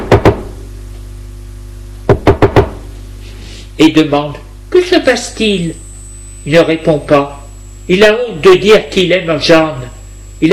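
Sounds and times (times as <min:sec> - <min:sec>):
knocking on a bedroom door: 0:00.0 - 0:00.6, 0:02.1 - 0:02.8
speech: 0:03.8 - 0:05.8, 0:06.4 - 0:09.8.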